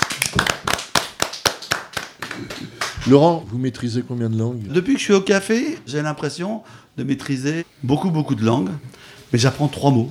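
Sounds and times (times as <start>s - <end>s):
small audience clapping at a café performance: 0.0s - 3.2s
speech: 3.1s - 10.0s.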